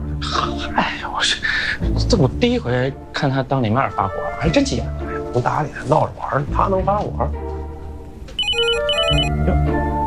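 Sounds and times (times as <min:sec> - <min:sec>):
speech: 0:00.4 - 0:07.5
telephone ringing with a bright electronic ringtone: 0:08.4 - 0:09.3.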